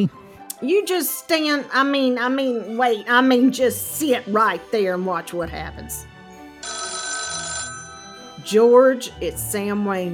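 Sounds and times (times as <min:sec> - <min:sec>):
speech: 0:00.0 - 0:06.1, 0:08.5 - 0:10.1
telephone bell ringing: 0:06.6 - 0:08.4.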